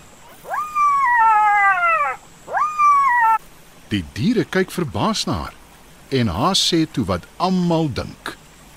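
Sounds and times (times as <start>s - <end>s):
pack of jackals howling: 0.2s - 3.4s
speech: 3.9s - 8.4s.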